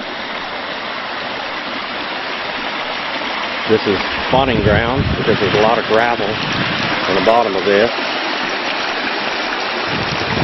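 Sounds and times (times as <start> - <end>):
small waterfall splashing: 0.0 - 10.4
speech: 3.7 - 8.1.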